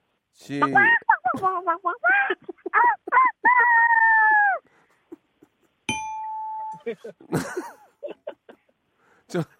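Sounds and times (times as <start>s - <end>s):
speech: 0.4s - 3.8s, 6.8s - 7.8s, 9.3s - 9.5s
child imitating a chicken clucking and crowing: 0.6s - 4.6s
bright ringing ding: 5.9s - 7.0s
laughter: 6.8s - 8.7s.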